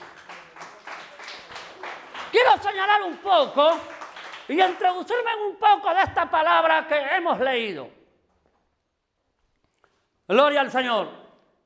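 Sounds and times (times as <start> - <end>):
church audience clapping during a sermon: 0.0 - 5.4
speech: 2.3 - 3.9, 4.5 - 8.0, 10.3 - 11.2.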